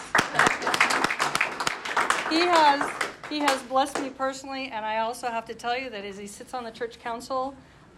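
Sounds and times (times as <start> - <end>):
audience applause: 0.0 - 3.6
speech: 2.3 - 7.9.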